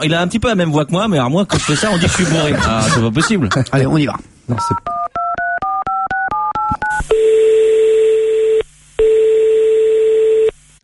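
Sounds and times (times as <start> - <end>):
speech: 0.0 - 4.9
laughter: 1.5 - 4.0
telephone number dialed on a touch-tone phone: 4.7 - 10.6.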